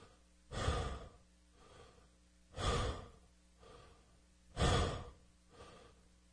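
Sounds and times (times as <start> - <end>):
connected mouth breathing in a breathwork exercise: 0.0 - 6.0.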